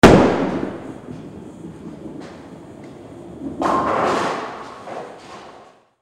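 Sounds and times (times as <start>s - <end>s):
bowling ball hit hard: 0.0s - 1.4s, 3.4s - 5.2s.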